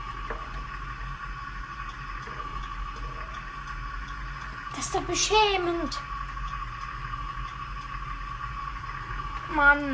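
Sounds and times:
low engine drone inside a bus: 0.0 - 9.9
bus turn signal indicator ticking: 1.8 - 4.7, 6.4 - 8.2
speech: 4.8 - 6.1, 9.6 - 9.9.

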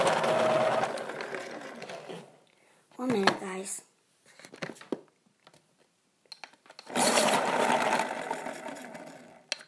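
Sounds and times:
electric pencil sharpener whirring with a grinding buzz: 0.0 - 2.4, 6.9 - 9.5.

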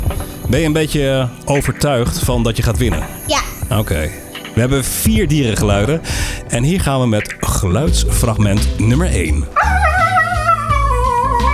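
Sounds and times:
speech: 0.5 - 9.8
dog whining in howl-like tones: 9.6 - 11.5.

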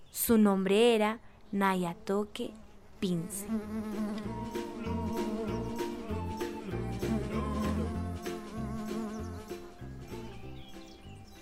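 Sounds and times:
speech: 0.2 - 5.3
small bee buzzing while flying around: 2.4 - 9.8
low rhythmic pulsing: 3.1 - 11.3.

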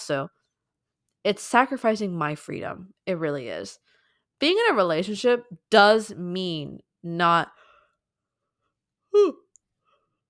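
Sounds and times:
speech: 0.1 - 0.4, 1.2 - 7.6, 9.2 - 9.4
person yawning: 9.1 - 9.5.

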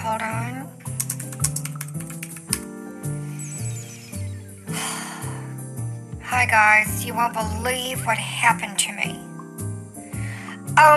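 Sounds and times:
music with sustained low tones: 0.0 - 10.9
typing on a computer keyboard: 0.9 - 2.7
speech: 6.4 - 9.2.

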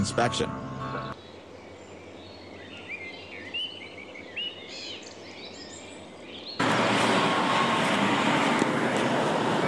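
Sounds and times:
speech: 0.0 - 0.7
birds chirping: 0.0 - 9.6
turboprop engines roaring on an airplane: 6.6 - 9.6.

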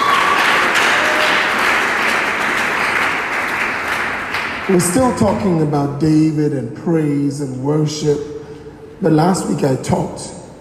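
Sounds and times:
audience clapping hands: 0.0 - 5.3
speech: 4.7 - 8.3, 9.0 - 10.4.

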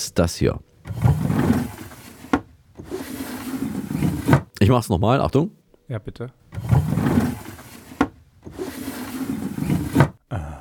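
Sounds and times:
speech: 0.1 - 1.0, 4.6 - 6.9
wooden door being opened and closed: 0.8 - 4.5, 6.5 - 10.2.

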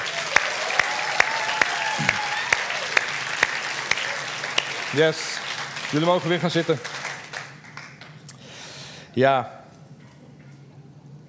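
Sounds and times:
large audience applauding: 0.0 - 8.3
speech: 4.9 - 5.3, 5.9 - 6.9, 9.2 - 9.6.

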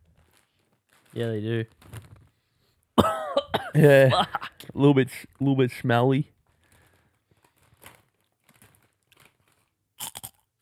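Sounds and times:
speech: 1.2 - 2.0, 3.8 - 6.4
crunching and chewing a non-spicy tomato-flavoured snack from New Zealand: 6.6 - 10.5.

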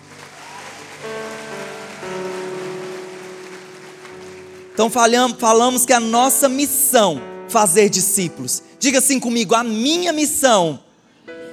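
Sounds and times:
large audience applauding: 0.0 - 6.1
speech: 4.8 - 10.8.

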